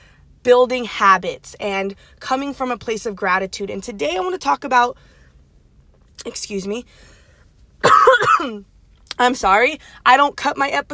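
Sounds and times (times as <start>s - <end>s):
speech: 0.4s - 5.1s, 6.2s - 7.1s, 7.8s - 10.9s
person coughing and clearing their throat: 7.8s - 8.6s.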